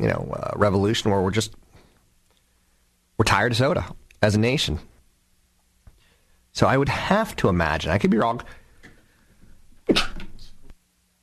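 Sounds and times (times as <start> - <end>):
speech: 0.0 - 1.6, 3.2 - 4.9, 6.6 - 8.6, 9.9 - 10.1
person sneezing: 9.9 - 10.3.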